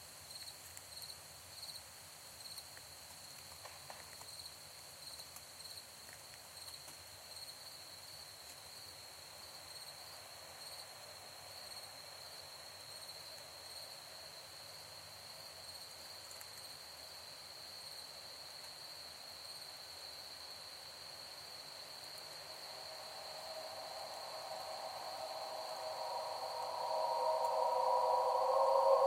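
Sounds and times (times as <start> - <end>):
crickets chirping: 0.0 - 29.0
high-pitched drone: 22.8 - 29.0.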